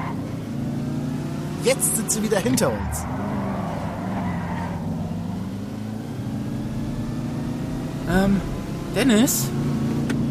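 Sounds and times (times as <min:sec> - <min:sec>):
car engine roaring during a road chase: 0:00.0 - 0:10.2
speech: 0:01.6 - 0:03.4, 0:08.1 - 0:09.9.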